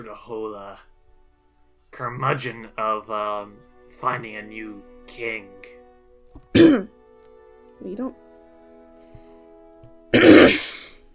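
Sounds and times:
speech: 0.0 - 0.9, 1.9 - 5.8, 6.4 - 7.0, 7.8 - 8.2
harsh cough: 6.6 - 6.9, 10.2 - 10.9.

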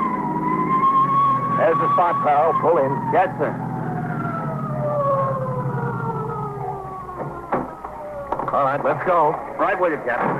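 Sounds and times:
approaching emergency vehicle siren wailing: 0.0 - 10.0
speech: 1.7 - 3.7, 8.6 - 10.3.

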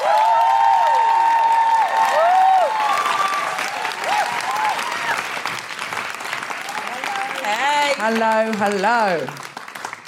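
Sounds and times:
audience whooping and cheering: 0.0 - 8.4
audience applauding: 0.0 - 10.0
speech: 8.1 - 9.4.

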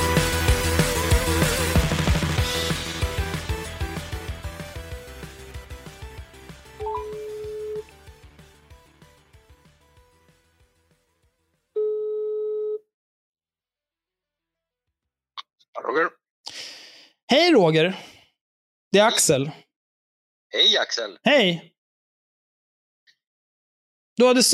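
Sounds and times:
music: 0.0 - 11.3
telephone ringback tones during outgoing call: 6.8 - 7.8, 11.8 - 12.8
speech: 17.3 - 18.1, 18.9 - 19.6, 20.5 - 21.7, 24.2 - 24.5.

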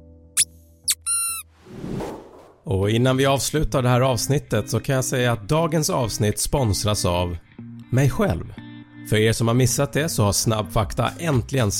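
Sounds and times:
squeaky dog chew toy squeaking: 0.4 - 1.5
speech: 2.6 - 11.7.

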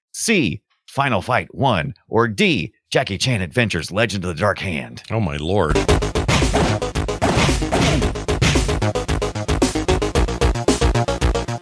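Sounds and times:
speech: 0.2 - 6.2
busy video game backing music: 5.7 - 11.5
video game punching sound effects: 6.0 - 8.9.

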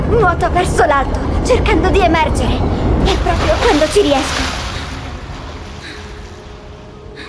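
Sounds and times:
speech: 0.1 - 4.6
violent waves crashing and surging water: 3.0 - 7.2.

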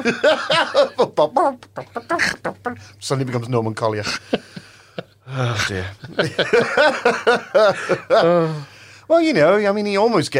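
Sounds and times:
laughter: 0.0 - 1.3, 6.0 - 8.6
speech: 0.0 - 2.4, 3.0 - 4.5, 5.3 - 10.3
voice imitating chicken clucking: 1.3 - 2.8.

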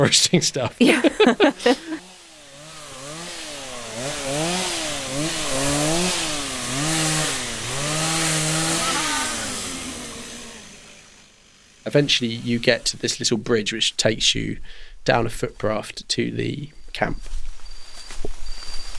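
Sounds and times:
speech: 0.0 - 1.8, 11.9 - 17.4
laughter: 0.0 - 2.0
chainsaw cutting through trees to clear a path: 0.9 - 13.8.

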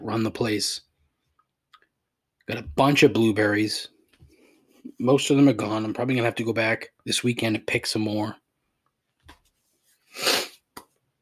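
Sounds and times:
speech: 0.1 - 0.9, 2.5 - 3.9, 4.9 - 8.4
person sniffling: 10.0 - 10.7.

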